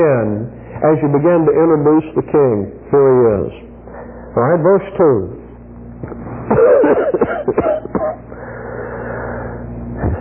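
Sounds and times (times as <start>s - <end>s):
speech: 0.0s - 3.6s, 4.4s - 5.4s, 6.6s - 8.2s
hacking cough: 6.5s - 8.3s.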